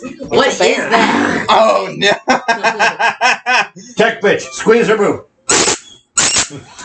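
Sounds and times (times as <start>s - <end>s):
laughter: 0.0s - 4.0s, 6.5s - 6.8s
speech: 0.0s - 6.8s
squeaky pig toy being squeezed: 5.5s - 6.5s.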